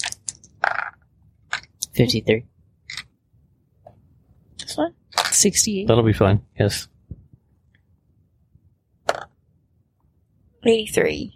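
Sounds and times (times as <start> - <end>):
two ten-sided dice rolled on a hard surface: 0.0 - 1.7
speech: 2.0 - 2.5, 4.8 - 6.9, 10.6 - 11.3.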